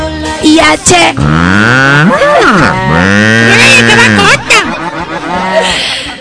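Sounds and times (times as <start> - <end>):
speech: 0.5 - 4.3
voice imitating a cow mooing: 1.2 - 4.4
laughter: 3.3 - 6.2.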